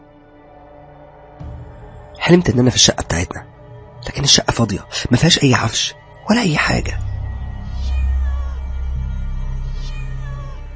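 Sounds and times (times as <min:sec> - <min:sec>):
speech: 0:02.2 - 0:07.0
black cat meowing: 0:07.5 - 0:10.7.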